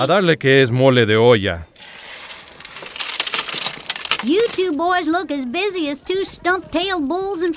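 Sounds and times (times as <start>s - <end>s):
speech: 0.0s - 1.8s, 4.2s - 7.5s
broken glass clinking as it is sorted by hand: 1.8s - 4.8s
splintered wood fragments crunching as they are sorted by hand: 1.8s - 4.8s.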